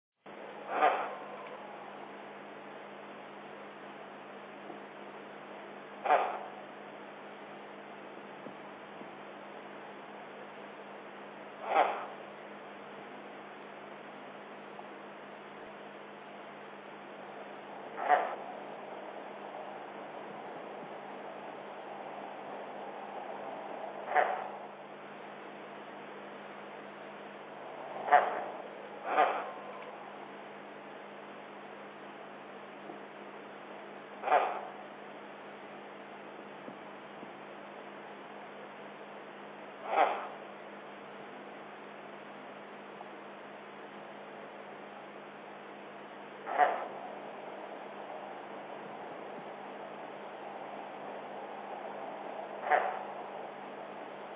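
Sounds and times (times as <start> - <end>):
squirrel glider calling: 0.3 - 3.4, 4.0 - 54.3.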